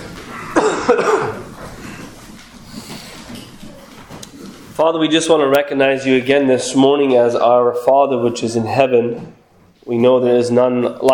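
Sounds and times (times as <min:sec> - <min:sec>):
faint room murmur: 0:00.0 - 0:11.1
person coughing: 0:00.4 - 0:01.5
speech: 0:00.8 - 0:01.4, 0:04.8 - 0:11.1.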